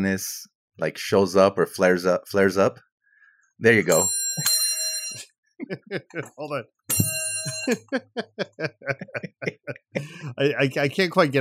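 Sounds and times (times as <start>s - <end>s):
speech: 0.0s - 2.9s, 3.6s - 4.2s, 5.1s - 11.3s
small bell ringing: 3.9s - 5.2s, 6.9s - 8.0s
short rhythmic bursts of laughter: 5.6s - 6.5s, 7.5s - 10.6s.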